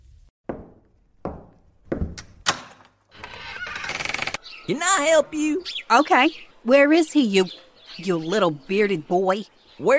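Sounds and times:
knocking thumps on a wooden door: 0:00.5 - 0:02.7
door being cracked open with a rustling scrape: 0:02.5 - 0:04.4
speech: 0:04.7 - 0:09.9.

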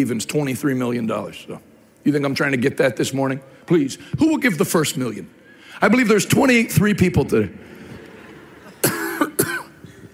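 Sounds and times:
speech: 0:00.0 - 0:07.7
person coughing from nicotine gum stuck in the throat: 0:08.7 - 0:10.1.

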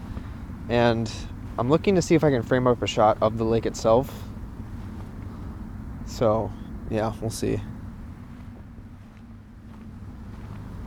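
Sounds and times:
wind blowing by a lake on a chilly day: 0:00.0 - 0:10.8
speech: 0:00.7 - 0:04.3, 0:06.1 - 0:07.7.

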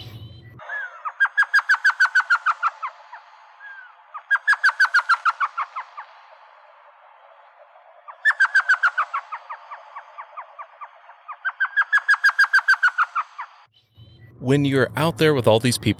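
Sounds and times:
elf owl laughing call: 0:00.6 - 0:06.1, 0:08.1 - 0:13.5
speech: 0:14.4 - 0:15.9.

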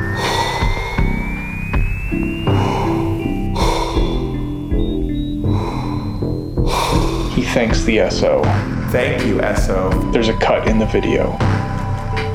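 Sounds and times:
rising tone: 0:00.0 - 0:10.5
music: 0:00.0 - 0:12.3
man giving exaggerated fake yawns: 0:02.2 - 0:07.4
speech: 0:07.6 - 0:11.5.

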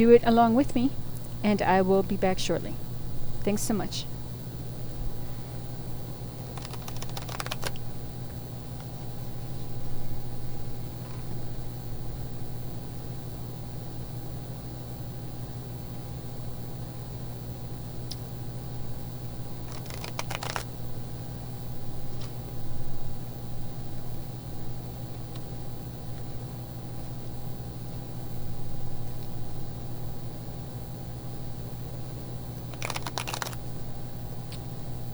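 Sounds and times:
speech: 0:00.0 - 0:02.8, 0:03.4 - 0:04.1
low hum: 0:00.0 - 0:35.1
faint clicks: 0:06.5 - 0:07.9, 0:19.7 - 0:20.6, 0:32.7 - 0:33.6
tarot deck of cards being shuffled: 0:06.6 - 0:07.8, 0:19.7 - 0:20.7, 0:32.7 - 0:33.6.

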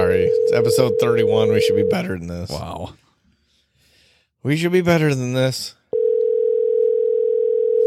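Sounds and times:
phone ringing tone: 0:00.0 - 0:02.2, 0:05.9 - 0:07.8
speech: 0:00.5 - 0:03.0, 0:04.4 - 0:05.8.

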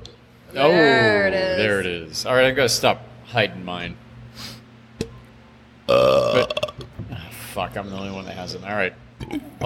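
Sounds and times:
speech: 0:00.5 - 0:04.6, 0:05.9 - 0:06.4, 0:07.6 - 0:09.6
loud deep burp: 0:05.9 - 0:06.9.

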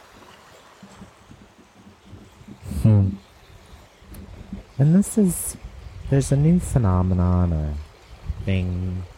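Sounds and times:
water flowing in a stream with gurgles and bubbling: 0:00.0 - 0:09.1
speech: 0:04.8 - 0:07.8, 0:08.5 - 0:09.1.

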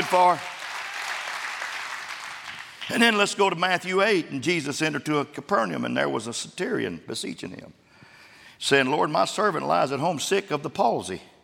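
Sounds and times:
audience clapping hands: 0:00.0 - 0:03.3
speech: 0:00.1 - 0:00.5, 0:02.9 - 0:07.8, 0:08.6 - 0:11.3.

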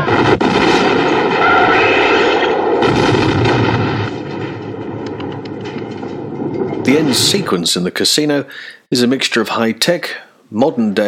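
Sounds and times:
loud explosion: 0:00.0 - 0:07.8
speech: 0:06.9 - 0:11.0.

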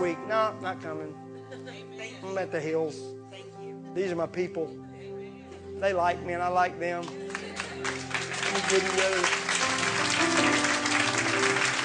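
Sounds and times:
speech: 0:00.1 - 0:04.9, 0:05.8 - 0:07.2, 0:07.8 - 0:09.4
crowd applauding: 0:07.0 - 0:11.8.

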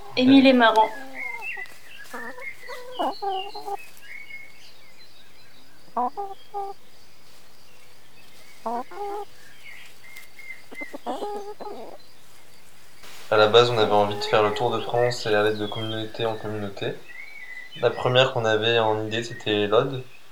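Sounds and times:
chickens clucking and calling: 0:00.0 - 0:20.0
speech: 0:00.2 - 0:01.0, 0:06.0 - 0:06.8, 0:08.6 - 0:09.4, 0:10.8 - 0:12.1, 0:13.3 - 0:17.1, 0:17.8 - 0:20.1.

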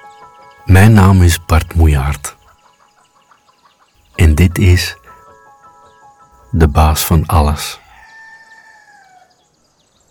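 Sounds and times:
speech: 0:00.7 - 0:02.4, 0:04.4 - 0:05.0, 0:06.5 - 0:07.8
rooster crowing: 0:07.7 - 0:09.5.

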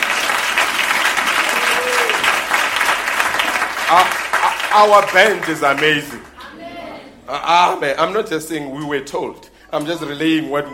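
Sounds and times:
audience clapping: 0:00.0 - 0:06.4
faint voices and cheers: 0:01.4 - 0:02.3
speech: 0:03.9 - 0:06.3, 0:07.3 - 0:10.7.

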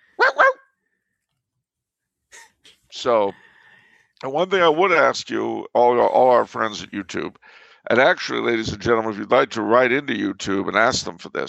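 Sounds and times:
person imitating a dog barking: 0:00.2 - 0:00.6
speech: 0:03.0 - 0:03.5, 0:04.2 - 0:11.4.

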